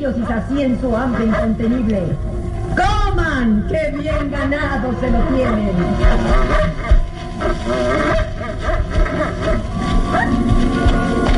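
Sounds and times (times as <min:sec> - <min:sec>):
wolves snarling and growling fighting over boar meat: 0:00.0 - 0:02.2, 0:03.7 - 0:11.3
speech: 0:00.0 - 0:08.2
wolves yelping sharply: 0:03.8 - 0:10.5.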